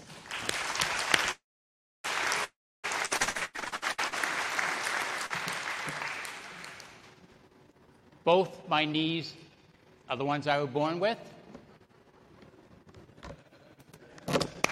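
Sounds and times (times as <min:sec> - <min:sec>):
room full of people applauding: 0:00.0 - 0:01.4, 0:02.0 - 0:07.2
speech: 0:08.3 - 0:09.4, 0:10.1 - 0:11.3.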